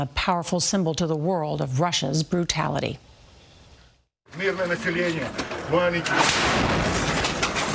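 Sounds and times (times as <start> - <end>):
speech: 0.0 - 3.1, 4.3 - 7.0
missile striking a line of fleeing civilians: 6.2 - 7.7.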